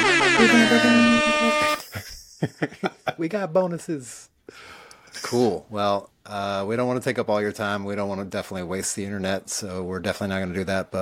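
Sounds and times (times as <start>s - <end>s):
air horn blast: 0.0s - 1.8s
speech: 0.4s - 1.6s, 2.5s - 11.0s
voices or laughter: 0.4s - 3.3s.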